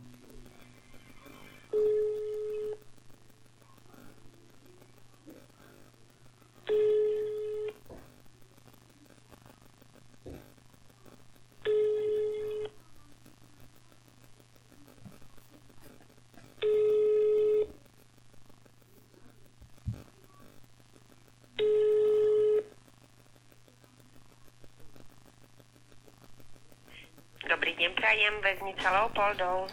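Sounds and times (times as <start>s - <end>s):
telephone line tones while a call is transferred: 1.7s - 2.8s, 6.7s - 7.8s, 11.6s - 12.8s, 16.6s - 17.7s, 21.6s - 22.7s
speech: 27.5s - 29.7s.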